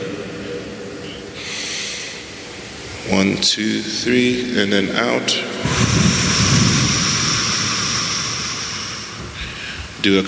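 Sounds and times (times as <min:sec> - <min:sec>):
low noise: 0:00.0 - 0:10.2
deep breath inhale during a grounding exercise: 0:01.1 - 0:02.5, 0:05.6 - 0:10.0
speech: 0:03.1 - 0:06.2, 0:10.0 - 0:10.2.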